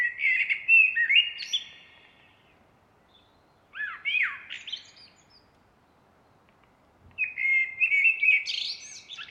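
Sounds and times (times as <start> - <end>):
common blackbird Turdus merula singing: 0.0 - 2.4, 3.1 - 5.5, 7.2 - 9.2.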